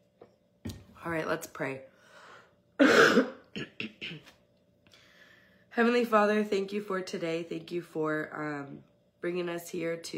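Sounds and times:
speech: 0:01.0 - 0:01.9, 0:02.8 - 0:03.8, 0:05.8 - 0:10.1
person coughing: 0:02.8 - 0:04.4.

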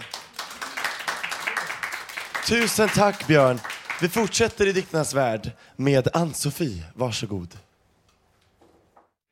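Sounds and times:
small group applauding after a poetry reading: 0:00.0 - 0:04.7
speech: 0:02.4 - 0:07.7.

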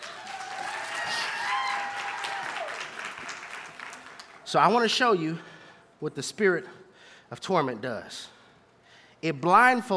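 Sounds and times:
audience applause: 0:00.0 - 0:04.4
speech: 0:04.5 - 0:08.4, 0:09.2 - 0:09.9.

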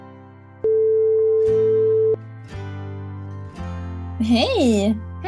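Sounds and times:
steady electronic beep of an outgoing phone call: 0:00.6 - 0:02.2
speech: 0:04.2 - 0:05.1.

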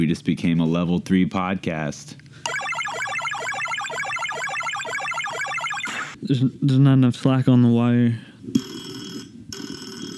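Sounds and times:
speech: 0:00.1 - 0:02.6, 0:06.2 - 0:08.7
telephone ringing with a buzzing electronic tone: 0:02.5 - 0:06.2.

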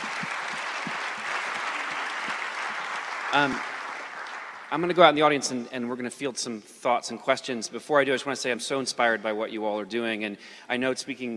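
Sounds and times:
room full of people clapping: 0:00.0 - 0:05.2
speech: 0:03.3 - 0:03.7, 0:04.7 - 0:11.3.

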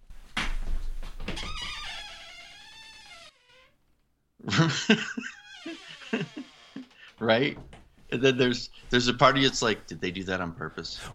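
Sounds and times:
door creaking on its hinges: 0:01.1 - 0:04.0, 0:05.3 - 0:07.9
laughter: 0:04.4 - 0:07.0
speech: 0:04.5 - 0:05.8, 0:07.2 - 0:11.1.

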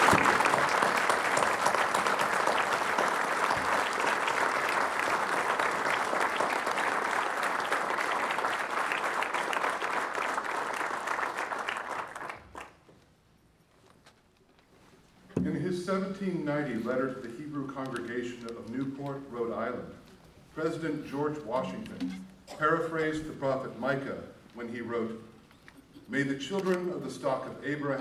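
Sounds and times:
audience applause: 0:00.0 - 0:12.8
speech: 0:16.2 - 0:20.0, 0:20.6 - 0:25.2, 0:26.1 - 0:27.9.

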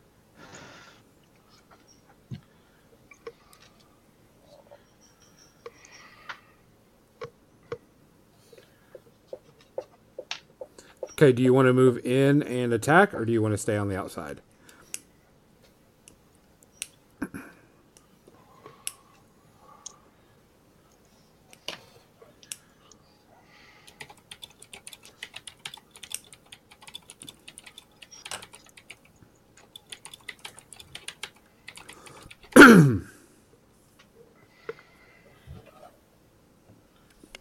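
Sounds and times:
speech: 0:11.2 - 0:14.5
computer keyboard typing: 0:23.9 - 0:32.6.

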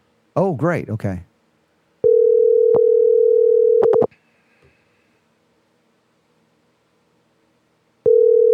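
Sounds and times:
speech: 0:00.4 - 0:01.3
phone line ringing on the caller's end: 0:02.0 - 0:04.1, 0:08.1 - 0:08.5.

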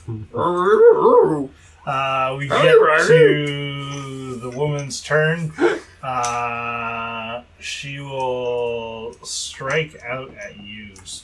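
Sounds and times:
person imitating a cartoon dog barking: 0:00.1 - 0:01.5, 0:02.5 - 0:03.5, 0:05.6 - 0:05.8
speech: 0:00.1 - 0:11.2.

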